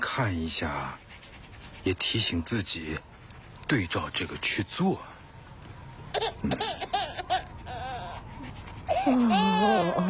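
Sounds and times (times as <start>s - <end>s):
speech: 0.2s - 1.0s, 1.8s - 3.1s, 3.7s - 5.1s, 6.2s - 7.0s, 9.0s - 10.0s
baby crying: 6.2s - 8.3s, 8.9s - 10.0s.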